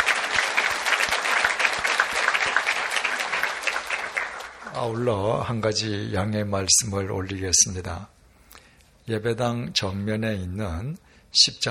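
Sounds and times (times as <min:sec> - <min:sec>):
large church audience applauding: 0:00.0 - 0:05.0
speech: 0:04.8 - 0:08.2, 0:09.1 - 0:11.6.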